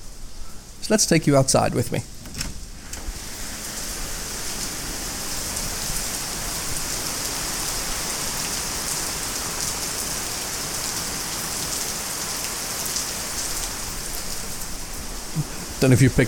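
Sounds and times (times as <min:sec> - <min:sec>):
heavy rain pouring outdoors: 0:00.0 - 0:16.2
speech: 0:00.9 - 0:02.1, 0:15.8 - 0:16.2.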